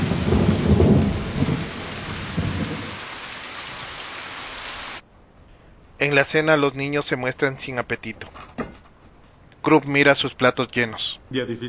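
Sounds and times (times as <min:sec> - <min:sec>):
heavy rain pouring at night: 0:00.0 - 0:05.1
speech: 0:06.0 - 0:08.8, 0:09.6 - 0:11.6.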